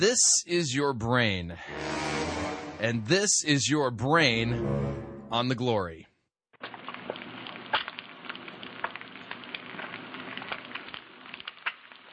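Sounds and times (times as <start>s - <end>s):
speech: 0.0s - 6.1s
eggs sizzling in a frying pan: 6.6s - 12.1s.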